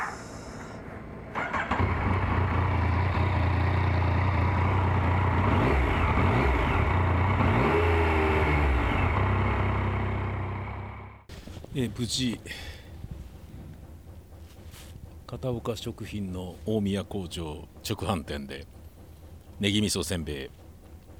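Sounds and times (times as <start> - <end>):
motorcycle engine starting, revving and pulling away: 1.3 - 11.3
speech: 11.8 - 12.7, 15.4 - 18.8, 19.6 - 20.6.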